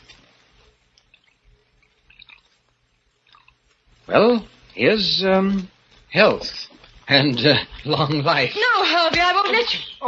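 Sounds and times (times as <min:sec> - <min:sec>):
Burgundy wine pouring into a goblet: 0:01.1 - 0:02.5
speech: 0:04.1 - 0:10.0.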